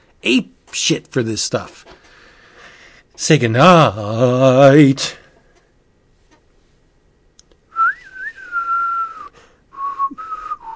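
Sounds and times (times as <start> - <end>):
speech: 0.2 - 2.0, 3.2 - 5.2
person whistling a wavering tune: 7.7 - 10.7.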